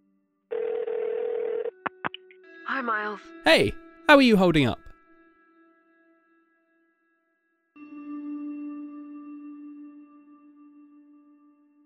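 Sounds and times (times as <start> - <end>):
telephone dial tone: 0.5 - 1.8
speech: 2.7 - 4.9.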